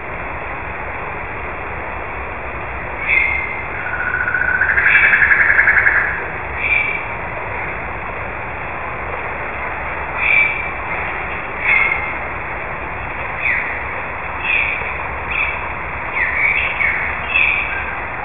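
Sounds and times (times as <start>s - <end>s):
waterfall: 0.0s - 18.2s
bird calling: 3.0s - 7.0s, 10.2s - 10.7s, 14.4s - 18.0s.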